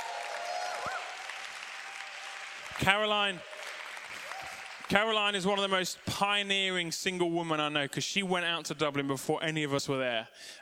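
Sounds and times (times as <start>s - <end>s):
room full of people applauding: 0.0s - 5.4s
speech: 2.8s - 3.5s, 4.9s - 10.6s.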